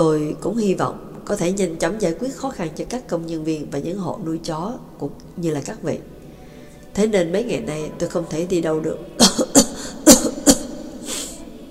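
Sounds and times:
speech: 0.0s - 6.2s, 7.0s - 9.4s
man's coughing fit: 9.2s - 10.8s.

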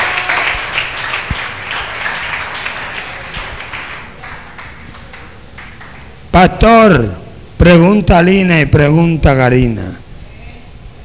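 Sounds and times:
congregation applauding at a church service: 0.0s - 6.3s
speech: 6.4s - 10.0s.

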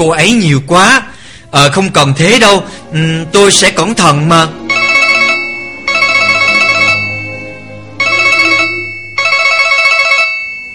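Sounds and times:
speech: 0.0s - 4.6s
telephone ringing with bright electronic tone: 4.7s - 10.7s.

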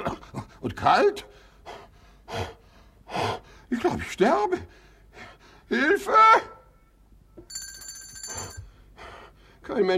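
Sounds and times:
speech: 0.7s - 1.3s, 3.7s - 4.8s, 5.7s - 6.5s, 9.6s - 9.9s
bell rung to call for help: 7.5s - 8.7s.

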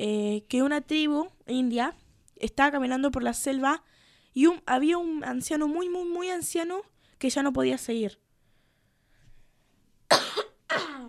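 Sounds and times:
speech: 0.0s - 8.2s
faint breath: 3.8s - 4.4s, 8.4s - 9.9s
person coughing harshly: 10.1s - 11.0s.

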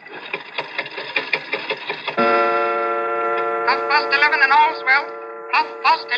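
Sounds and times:
antique clock ticking as hand is pushed forward: 0.3s - 6.1s
antique clock sustained ringing chime: 2.2s - 6.1s
speech: 3.9s - 6.1s.

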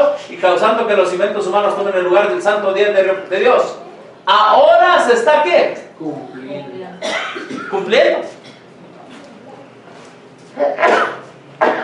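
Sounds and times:
speech: 0.4s - 8.4s, 10.6s - 11.7s
person sneezing: 10.6s - 11.8s.

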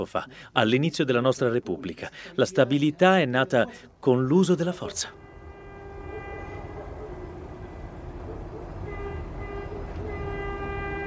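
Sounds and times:
speech: 0.0s - 5.2s
train horn holding a sustained chord at night in Chile: 5.1s - 11.0s.

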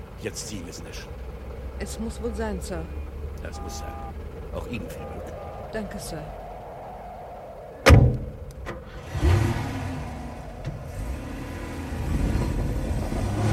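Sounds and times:
car engine rumbling and revving on ice: 0.0s - 13.5s
speech: 0.2s - 6.4s
heavy thumps of a car driving onto ice: 7.8s - 8.8s.

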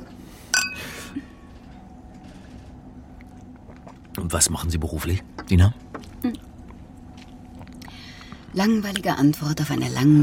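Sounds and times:
glasses clinking in a toast: 0.5s - 1.0s
speech: 4.3s - 6.4s, 8.6s - 10.2s.

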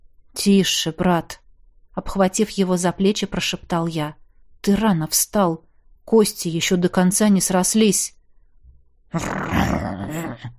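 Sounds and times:
speech: 0.4s - 1.4s, 2.0s - 8.2s, 9.1s - 10.5s
wolf growling: 9.2s - 10.3s.

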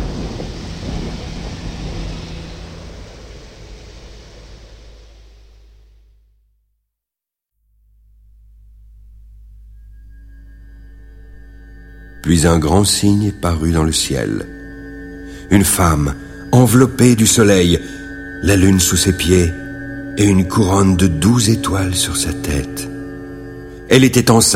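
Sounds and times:
deep rumbling thunder: 0.0s - 5.8s
heavy rain in a thunderstorm: 0.0s - 5.9s
speech: 12.2s - 14.6s, 15.5s - 19.6s, 20.2s - 22.9s, 23.9s - 24.5s.

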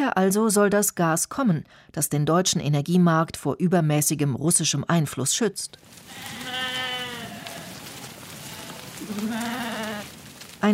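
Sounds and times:
speech: 0.1s - 6.6s, 10.6s - 10.7s
faint hiss: 5.8s - 10.7s
sheep from a large flock bleating in a forest clearing: 5.8s - 10.7s.

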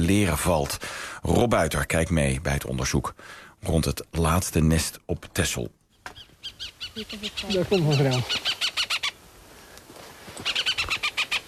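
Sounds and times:
speech: 0.1s - 8.6s
farmland birds giving alarm calls near a hen harrier nest on Texel: 5.9s - 9.4s, 10.4s - 11.4s.

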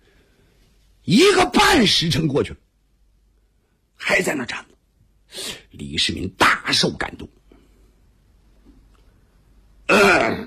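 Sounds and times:
speech: 1.0s - 2.6s, 4.2s - 4.7s, 5.3s - 7.4s, 9.9s - 10.4s
storyteller clearing throat acting out a cough: 9.9s - 10.4s.

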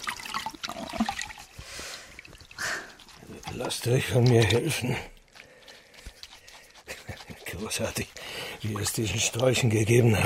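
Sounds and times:
water sloshing and trickling as blood is washed out of cloth: 0.0s - 10.2s
speech: 3.6s - 5.1s, 7.6s - 10.2s.

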